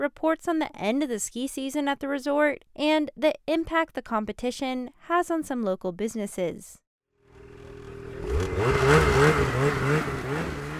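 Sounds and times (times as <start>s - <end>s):
speech: 0.0s - 6.8s, 8.2s - 10.6s
snowmobile engines revving at hill climb competition at a ski resort: 7.4s - 10.7s.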